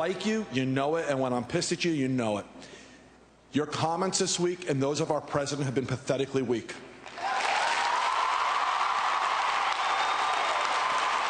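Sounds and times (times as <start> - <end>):
speech: 0.0 - 2.8, 3.5 - 7.3
applause from a large audience of kids in an amphitheater: 7.2 - 11.2.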